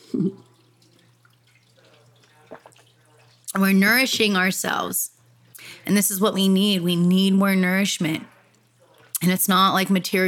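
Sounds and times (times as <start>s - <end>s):
person sipping water: 0.0s - 3.4s
speech: 0.1s - 0.5s, 3.6s - 5.1s, 5.8s - 8.3s, 9.2s - 10.2s.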